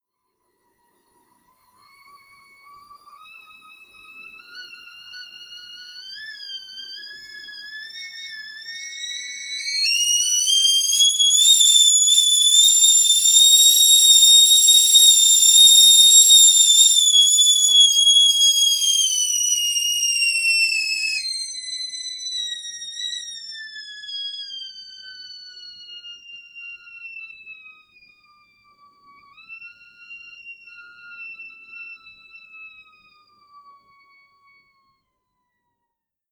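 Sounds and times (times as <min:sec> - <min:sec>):
whistle kettle boiling: 0:01.9 - 0:27.8.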